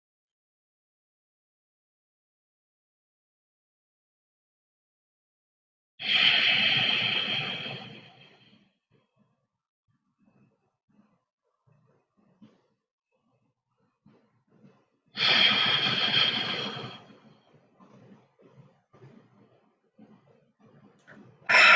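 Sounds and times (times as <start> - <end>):
slow deep breathing in a calming centering exercise: 6.0 - 8.8, 14.1 - 21.7.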